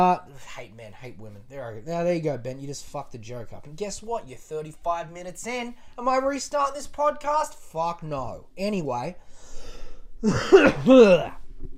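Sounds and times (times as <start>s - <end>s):
speech: 0.0s - 11.7s
rough harsh coughs: 10.2s - 11.4s.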